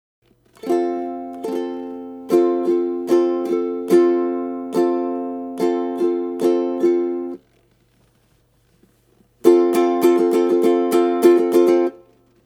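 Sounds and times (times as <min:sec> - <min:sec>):
ukulele strumming: 0:00.5 - 0:07.4, 0:09.4 - 0:12.4.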